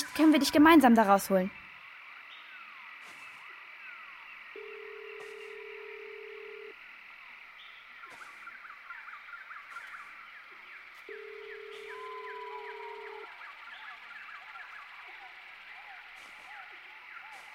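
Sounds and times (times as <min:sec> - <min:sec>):
continuous insect-like jungle hum in the Brazilian jungle: 0:00.0 - 0:17.5
speech: 0:00.2 - 0:01.6
low electronic telephone tone while dialing a call: 0:04.6 - 0:06.8, 0:11.1 - 0:13.3.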